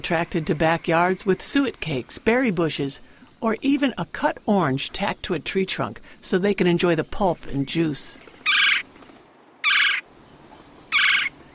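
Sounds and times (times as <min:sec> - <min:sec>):
speech: 0:00.0 - 0:08.3
red-bellied woodpecker rolling churr calls: 0:07.6 - 0:08.9, 0:09.6 - 0:10.0, 0:10.8 - 0:11.5.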